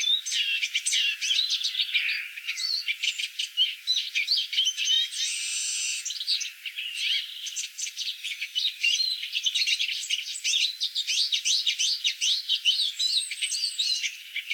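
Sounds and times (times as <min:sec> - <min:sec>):
Eurasian siskin twittering song: 0:00.0 - 0:14.5.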